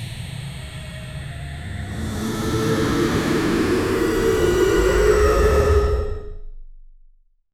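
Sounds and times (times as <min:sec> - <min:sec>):
superhero build-up sound effect: 0:01.5 - 0:06.5.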